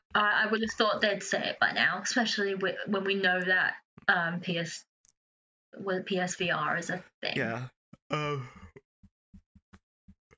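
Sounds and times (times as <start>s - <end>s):
speech: 0.2s - 4.9s, 5.7s - 8.6s
person yawning: 8.1s - 8.6s.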